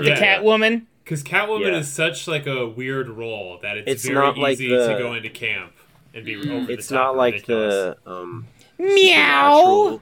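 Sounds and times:
speech: 0.0 - 9.9
person's voice imitating a cat meowing: 8.8 - 9.9.

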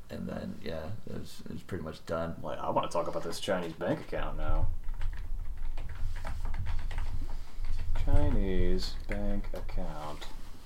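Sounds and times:
low constant hum: 0.0 - 10.6
speech: 0.2 - 4.8, 8.4 - 10.4
computer keyboard typing clicks: 4.8 - 9.7.

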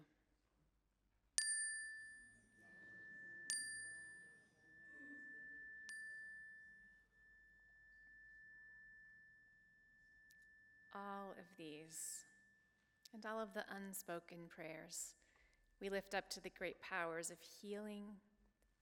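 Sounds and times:
bright metallic chime rung during a time of prayer: 1.4 - 11.0
speech: 11.0 - 12.3, 13.1 - 15.2, 15.8 - 18.7.

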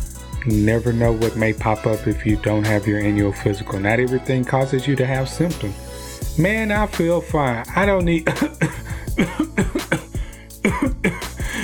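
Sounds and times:
speech: 0.4 - 5.8, 6.4 - 9.7
person coughing in harsh throaty bursts: 8.3 - 11.6.

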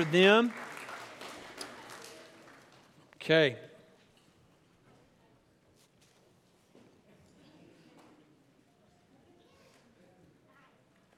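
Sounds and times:
speech: 0.0 - 0.6, 3.2 - 3.7
audience applauding a band: 0.0 - 2.9.

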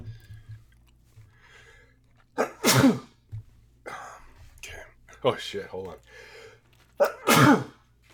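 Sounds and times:
human sneezing loudly: 2.4 - 3.2, 7.0 - 7.8
speech: 2.8 - 3.1, 5.2 - 6.3.

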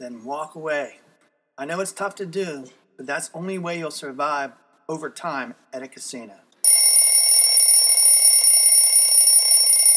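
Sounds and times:
speech: 0.0 - 1.0, 1.6 - 6.4
alarm bell ringing: 6.6 - 9.9.

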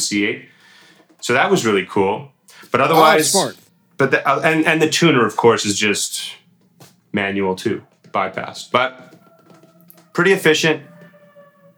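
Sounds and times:
speech: 0.0 - 0.6, 1.2 - 6.4, 7.1 - 9.2, 10.2 - 10.9
faint ambulance sirens: 2.6 - 3.6, 6.1 - 11.7.

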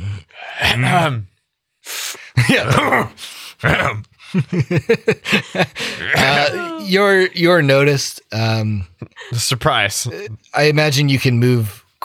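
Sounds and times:
man vocally imitating a middle-aged man's grunts, groans and throaty exhalations: 0.0 - 1.3, 2.4 - 4.2, 5.8 - 7.3
speech: 0.6 - 1.3, 2.4 - 12.0
laughter: 4.2 - 7.0.

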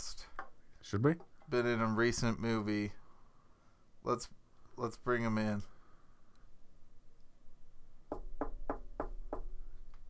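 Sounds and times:
speech: 0.9 - 3.0, 4.0 - 5.7
firm knocking on a door: 8.1 - 9.6.

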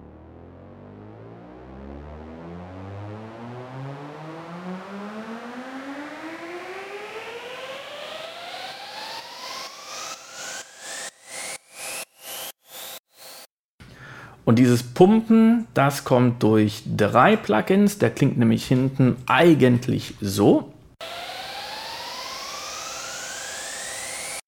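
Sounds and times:
synth riser in a music production: 0.0 - 13.5, 21.0 - 24.4
speech: 14.5 - 20.7.

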